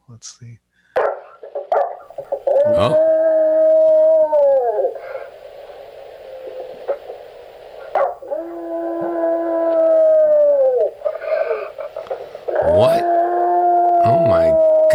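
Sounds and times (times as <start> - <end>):
speech: 0.1 - 0.7, 2.2 - 3.2
pet dog howling: 2.2 - 5.3, 7.8 - 14.9.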